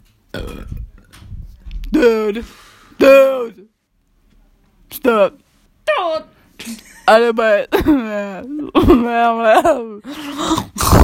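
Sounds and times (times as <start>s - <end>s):
burps from a girl: 0.3s - 0.9s
speech: 2.0s - 3.7s, 5.0s - 5.4s, 7.1s - 11.0s.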